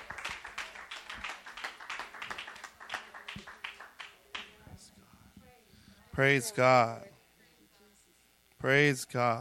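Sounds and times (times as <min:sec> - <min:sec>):
audience clapping in praise: 0:00.0 - 0:04.6
speech: 0:06.2 - 0:07.1, 0:08.6 - 0:09.3.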